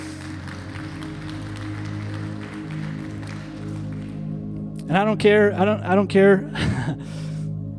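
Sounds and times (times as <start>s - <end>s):
audience clapping along: 0.0s - 5.0s
sustained keyboard chords: 0.0s - 7.7s
speech: 4.9s - 6.9s.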